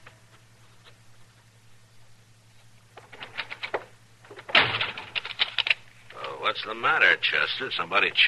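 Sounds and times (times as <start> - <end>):
rattling and clicking: 2.9 - 6.4
door slamming shut: 4.4 - 5.2
speech: 7.5 - 8.2.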